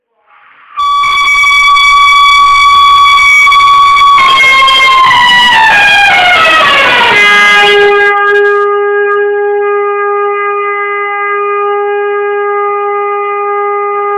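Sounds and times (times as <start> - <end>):
large trumpet on Good Friday: 0.2 - 14.1.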